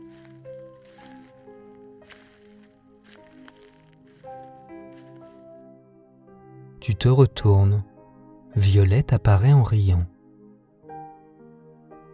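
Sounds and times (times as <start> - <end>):
soft squishy footsteps walking gently on a lawn: 0.0 - 5.6
sustained gentle musical accompaniment: 0.0 - 12.1
speech: 6.8 - 7.9, 8.6 - 10.1.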